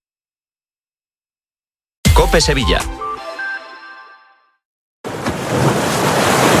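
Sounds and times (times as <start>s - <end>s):
brief musical tone: 2.1s - 4.6s
speech: 2.2s - 3.0s
ocean waves crashing on a beach: 5.1s - 6.5s.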